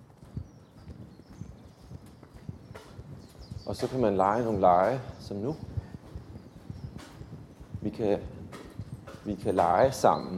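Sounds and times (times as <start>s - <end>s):
horse hooves clip-clopping while walking in a paddock: 0.0s - 10.3s
speech: 3.7s - 5.7s, 7.8s - 8.4s, 9.2s - 10.3s.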